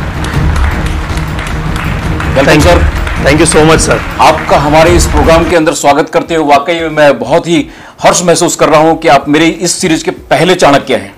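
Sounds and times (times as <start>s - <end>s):
audience applause welcoming a guest: 0.0s - 5.7s
speech: 2.4s - 11.1s.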